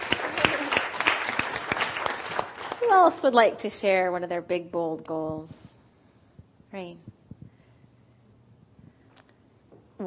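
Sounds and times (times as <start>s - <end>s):
audience applause at a group session: 0.0s - 2.9s
speech: 3.0s - 5.7s, 6.7s - 7.2s.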